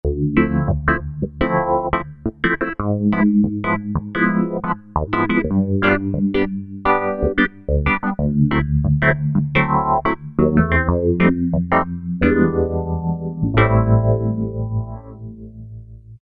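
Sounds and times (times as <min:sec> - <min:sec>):
funky Roland V-Synth synthesizer factory patch: 0:00.1 - 0:15.9.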